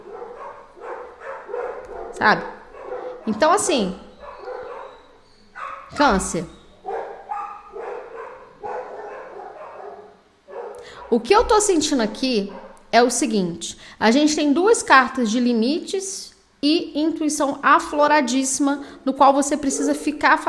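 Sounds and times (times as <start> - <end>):
dogs barking: 0.0 - 11.6, 12.4 - 12.9, 19.6 - 20.2
speech: 2.2 - 2.6, 3.2 - 4.1, 5.9 - 6.6, 11.1 - 20.4.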